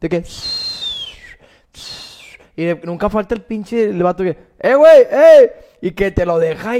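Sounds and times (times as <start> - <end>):
speech: 0.0 - 0.6, 2.6 - 6.7
voice imitating a whistling chiflador firecracker held in the hand: 0.2 - 2.4.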